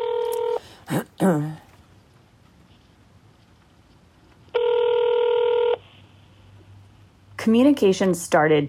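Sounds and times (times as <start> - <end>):
phone call ringback tones ringing unanswered: 0.0 - 0.6, 4.5 - 5.8
speech: 0.9 - 1.6, 7.4 - 8.6.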